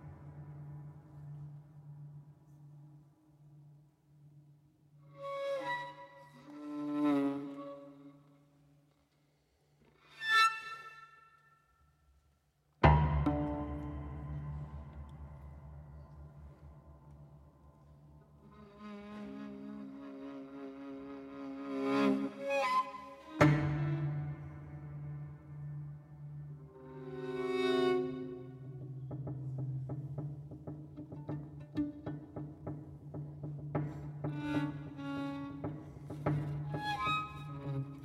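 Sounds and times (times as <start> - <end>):
violin song: 5.1 - 8.6, 12.9 - 38.0.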